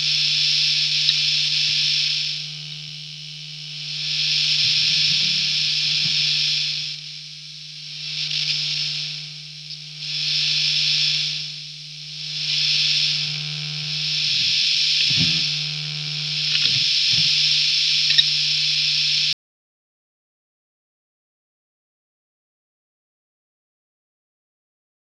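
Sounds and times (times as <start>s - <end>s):
electric guitar interference noise: 0.0s - 19.3s.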